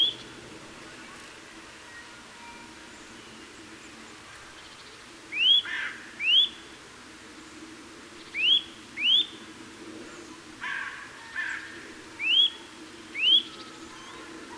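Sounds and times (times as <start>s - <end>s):
Eurasian nuthatch Sitta europaea whistling calls: 5.3s - 6.6s, 8.3s - 9.4s, 12.2s - 14.3s.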